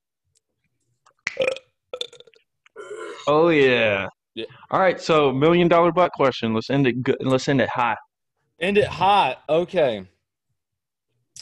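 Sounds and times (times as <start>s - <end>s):
short croaking belch: 1.4s - 3.3s
loud deep burp: 1.4s - 3.4s
speech: 3.3s - 8.0s, 8.6s - 10.1s.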